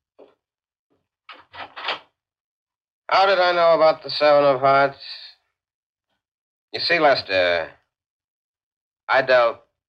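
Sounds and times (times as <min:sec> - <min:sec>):
door opening: 0:01.3 - 0:02.1
speech: 0:03.1 - 0:05.2, 0:06.7 - 0:07.8, 0:09.1 - 0:09.6.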